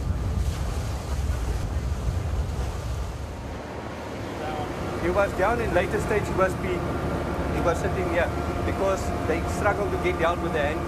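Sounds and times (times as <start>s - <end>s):
wind buffeting the microphone: 0.0s - 7.5s
rumble of a former prison ferry crossing open sea from Cape Town: 0.0s - 10.8s
wash of waves on open sea: 0.0s - 10.8s
speech: 5.0s - 10.8s.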